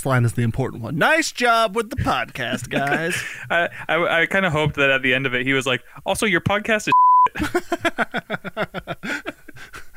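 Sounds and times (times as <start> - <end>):
rapid speech: 0.0 - 6.9
speech: 0.0 - 9.8
laughter: 1.9 - 3.7, 7.4 - 9.8
censor beep: 6.9 - 7.3.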